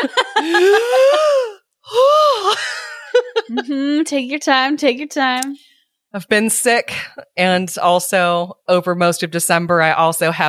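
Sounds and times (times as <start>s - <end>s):
laughter: 0.0s - 3.8s
person panting out of breath after running up and down stairs: 0.4s - 2.7s
speech: 3.5s - 10.4s.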